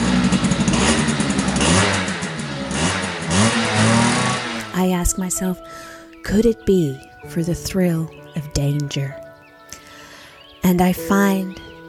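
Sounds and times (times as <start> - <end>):
dirt bike engine revving: 0.0 - 4.9
speech: 4.8 - 9.2, 10.6 - 11.7.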